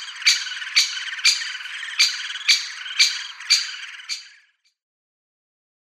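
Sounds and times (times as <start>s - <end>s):
great spotted woodpecker kik calls: 0.0s - 4.6s.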